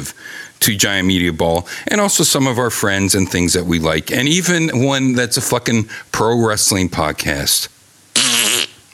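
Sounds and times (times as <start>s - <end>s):
speech: 0.0s - 7.8s
farting: 8.2s - 8.8s.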